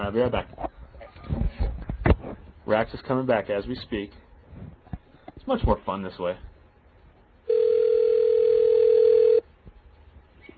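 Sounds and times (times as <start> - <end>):
speech: 0.1 - 0.6, 2.7 - 4.2, 5.5 - 6.5
steady telephone dialing tone played over the air: 7.5 - 9.4.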